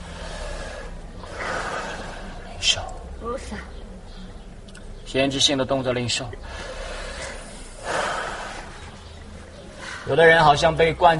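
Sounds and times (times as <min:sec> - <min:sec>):
people inhaling loudly and deeply at a worship gathering: 0:00.0 - 0:02.6, 0:06.4 - 0:10.1
speech: 0:02.6 - 0:03.8, 0:05.1 - 0:06.8, 0:10.1 - 0:11.1.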